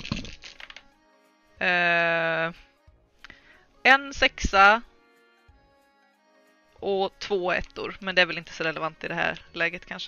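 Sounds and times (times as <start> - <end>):
dice clattering across a surface: 0.0 - 0.8
speech: 1.6 - 2.7, 4.0 - 4.9, 6.8 - 10.0.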